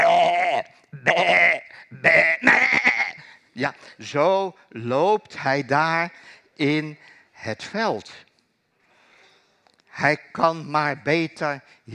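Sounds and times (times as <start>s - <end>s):
sheep and goats bleating: 0.0s - 3.2s
speech: 1.0s - 2.6s, 3.6s - 8.2s, 10.0s - 11.9s.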